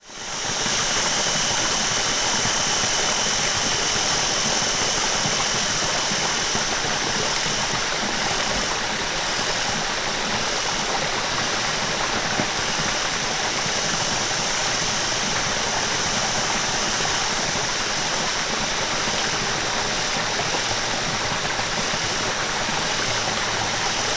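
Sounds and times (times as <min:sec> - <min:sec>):
small rainforest stream in Australia: 0:00.0 - 0:24.1
small rainforest waterfall in Australia: 0:00.0 - 0:24.1.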